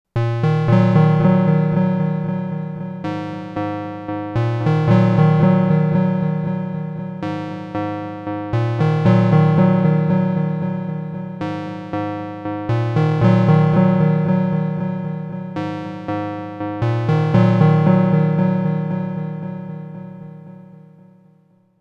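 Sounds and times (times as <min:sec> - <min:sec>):
synthesizer with EQ and dark delays: 0:00.2 - 0:21.0.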